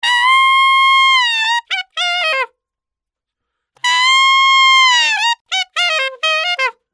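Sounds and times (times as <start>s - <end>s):
clean saxophone loop: 0.0s - 2.5s, 3.8s - 6.8s.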